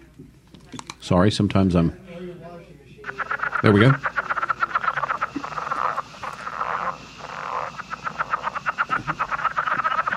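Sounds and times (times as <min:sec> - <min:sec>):
speech: 0:00.7 - 0:02.0, 0:03.6 - 0:04.1
southern leopard frog call: 0:03.0 - 0:10.1.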